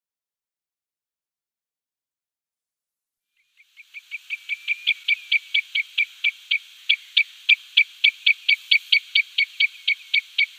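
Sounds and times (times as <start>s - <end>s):
Common redshank repeating short piping notes: 3.8s - 10.5s.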